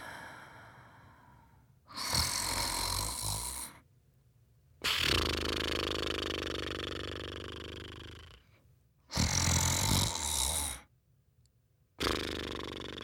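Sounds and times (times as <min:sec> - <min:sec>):
snoring: 0:01.9 - 0:03.8, 0:04.8 - 0:10.9, 0:12.0 - 0:13.0.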